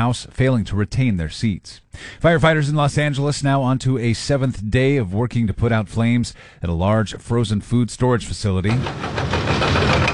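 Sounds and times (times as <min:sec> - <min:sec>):
speech: 0:00.0 - 0:10.0
skid steer loader engine clearing debris around fire-damaged frozen food warehouse: 0:08.7 - 0:10.1.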